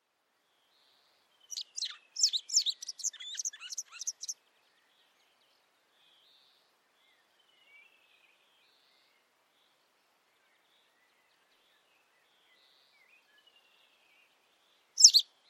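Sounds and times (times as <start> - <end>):
high squeaky bird chirps: 1.6 - 4.3, 15.0 - 15.2.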